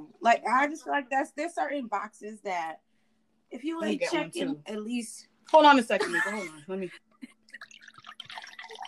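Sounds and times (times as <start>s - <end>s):
speech: 0.2s - 2.9s, 3.5s - 7.7s
wine pouring into a glass: 7.5s - 8.8s.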